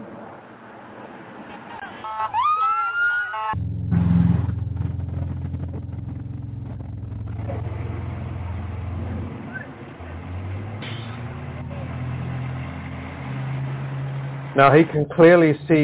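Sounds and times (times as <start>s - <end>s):
busy street noise: 0.0s - 15.8s
car engine rumbling as the vehicle moves: 3.5s - 15.8s
speech: 14.6s - 15.8s.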